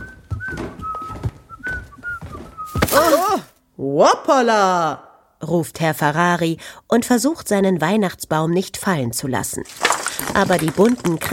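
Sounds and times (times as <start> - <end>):
caretaker whistling coming round a corner: 0.0 - 2.9
speech: 2.8 - 11.3.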